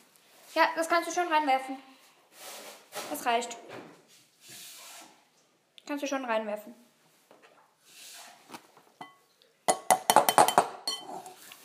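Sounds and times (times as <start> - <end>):
speech: 0.5 - 3.9, 5.9 - 6.8
ceramic bowl clinking in a kitchen: 9.0 - 11.4.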